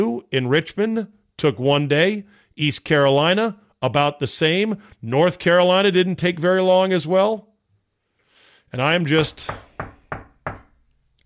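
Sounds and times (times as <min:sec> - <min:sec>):
speech: 0:00.0 - 0:07.5, 0:08.7 - 0:10.2
knocking on wood: 0:09.4 - 0:10.8.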